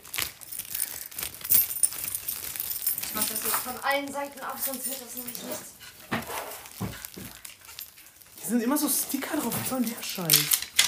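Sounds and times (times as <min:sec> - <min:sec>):
keys jangling and clinking as they are handed over: 0:00.4 - 0:05.7, 0:07.3 - 0:08.2, 0:08.8 - 0:10.8
speech: 0:03.6 - 0:05.8, 0:08.5 - 0:10.6.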